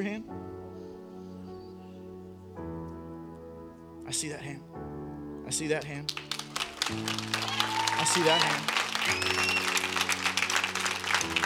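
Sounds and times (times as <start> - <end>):
speech: 0.0 - 0.6, 4.1 - 4.9, 5.5 - 10.0, 11.2 - 11.4
sustained low musical tone: 0.0 - 11.4
audience at a prayer gathering clapping and cheering: 6.1 - 11.4.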